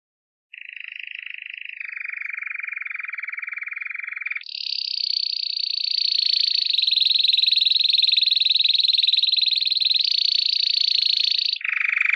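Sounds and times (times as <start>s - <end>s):
canary giving rattling trill and high pulsed roll: 0.5s - 12.1s.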